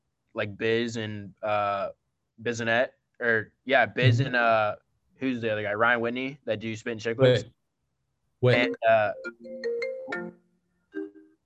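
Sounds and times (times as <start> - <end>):
speech: 0.4 - 7.6, 8.4 - 10.4
phone ringtone melody: 8.5 - 11.4.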